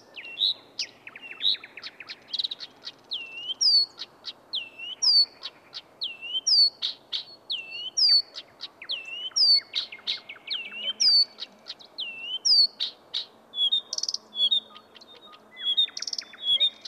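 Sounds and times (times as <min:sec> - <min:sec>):
Blyth's reed warbler singing at Villähde, Lahti, Finland: 0:00.0 - 0:16.8.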